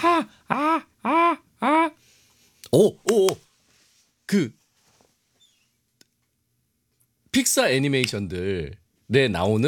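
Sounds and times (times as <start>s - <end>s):
human voice imitating a seagull's cry: 0.0s - 2.0s
speech: 0.1s - 1.4s, 2.7s - 3.5s, 4.3s - 4.6s, 7.4s - 9.6s.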